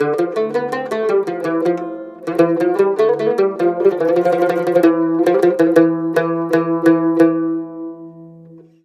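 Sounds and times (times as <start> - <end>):
cumbus playing Mediteranean traditional music: 0.0 - 8.7.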